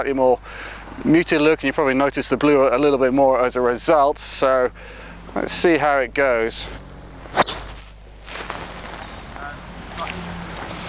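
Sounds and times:
speech: 0.0 - 7.4
airy noise: 0.0 - 10.8
golf driver with a taller shorter head striking the ball: 7.0 - 8.0.

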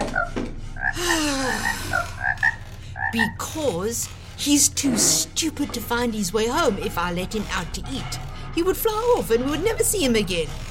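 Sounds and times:
outdoor hum: 0.0 - 10.6
frog croaking: 0.1 - 3.4
speech: 3.1 - 10.6.

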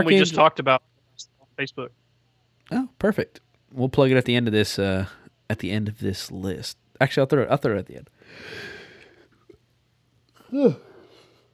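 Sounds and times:
speech: 0.0 - 2.0, 2.7 - 8.7, 10.5 - 10.9
breathy exhale: 8.2 - 9.3
person yawning: 10.4 - 11.0.

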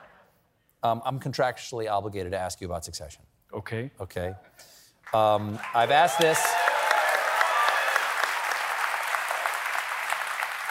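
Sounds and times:
speech: 0.8 - 6.6
audience applause: 5.1 - 10.7.

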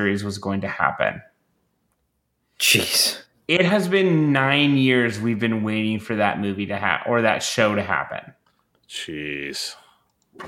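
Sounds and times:
speech: 0.0 - 1.3, 2.6 - 9.8
single person sneezing: 2.6 - 3.2.

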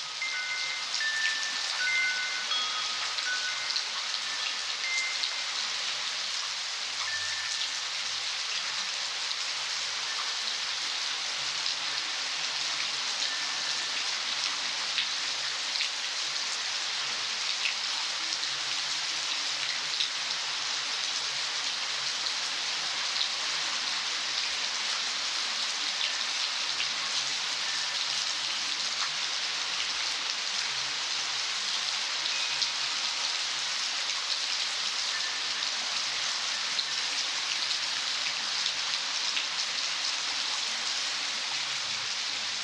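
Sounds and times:
wind chimes: 0.0 - 6.2, 7.0 - 9.2, 13.1 - 14.8, 27.6 - 28.5, 32.2 - 33.5, 34.9 - 38.0
California rainstorm: 0.0 - 42.6.

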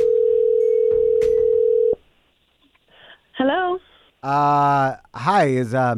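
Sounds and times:
phone call ringing tone from a restricted number: 0.0 - 2.0
speech: 4.2 - 5.9.

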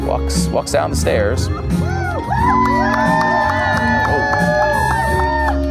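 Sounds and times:
speech: 0.1 - 3.2
large crowd at a campaign rally cheering and whooping: 1.4 - 5.6.

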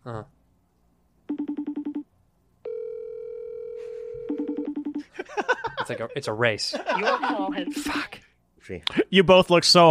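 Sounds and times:
video-call app outgoing ring through a phone: 1.3 - 2.1, 2.7 - 5.0, 7.3 - 8.1
laughter: 5.0 - 7.7
speech: 5.9 - 9.8.

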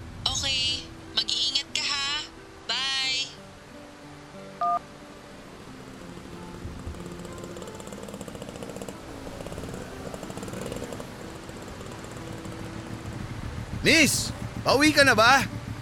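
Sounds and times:
heavy rain: 0.0 - 15.8
motorized tricycle engine approaching and idling: 5.1 - 15.8
speech: 13.9 - 15.6.

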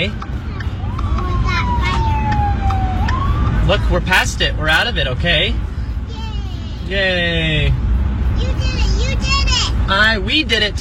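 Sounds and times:
speech: 0.0 - 0.2, 3.7 - 5.6, 6.9 - 7.8, 9.9 - 10.8
emergency vehicle siren wailing: 0.0 - 4.9
heavy rumble of road traffic: 0.0 - 10.8.

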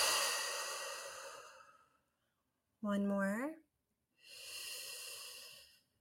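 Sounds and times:
deep breath out during a relaxation tapping exercise: 0.0 - 2.0, 4.2 - 5.9
speech: 2.8 - 3.6.

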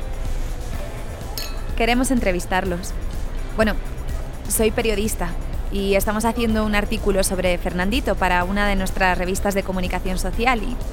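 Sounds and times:
glasses clinking in a toast: 1.4 - 1.8
speech: 1.8 - 10.9.

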